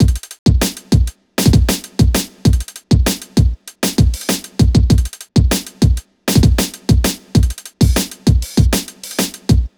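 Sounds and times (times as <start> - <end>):
hip hop drum loop in B minor: 0.0 - 9.7.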